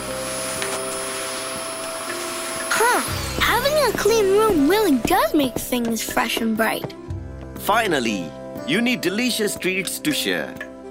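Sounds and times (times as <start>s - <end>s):
vacuum cleaner running to clean a room: 0.0s - 6.7s
speech: 2.8s - 7.0s, 7.7s - 10.7s.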